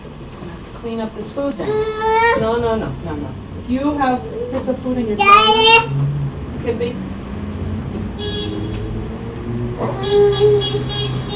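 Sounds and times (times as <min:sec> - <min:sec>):
steady traffic rumble: 0:00.0 - 0:11.3
speech: 0:00.8 - 0:07.1, 0:09.8 - 0:11.0
car horn honking: 0:08.1 - 0:09.0, 0:09.8 - 0:11.3.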